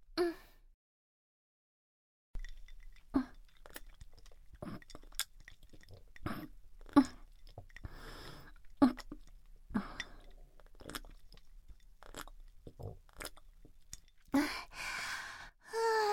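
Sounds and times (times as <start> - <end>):
person gulping and swallowing drinking water during a break: 2.4 - 14.6
sighing breaths and breathy exhale: 14.4 - 16.1.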